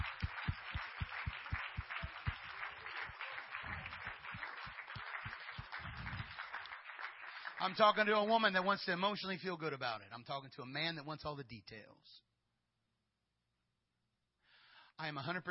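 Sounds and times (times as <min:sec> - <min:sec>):
audience clapping: 0:00.0 - 0:08.6
speech: 0:07.6 - 0:12.3, 0:15.0 - 0:15.4.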